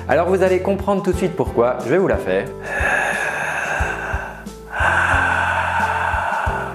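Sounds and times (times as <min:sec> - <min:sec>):
speech: 0:00.1 - 0:03.0
loud raspy breathing through a constricted throat as a breathing exercise: 0:02.6 - 0:06.7.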